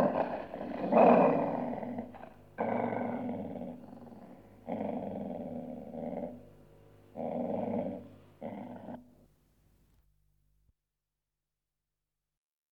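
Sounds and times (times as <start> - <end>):
dog growling: 0.0 - 6.5, 7.2 - 9.2.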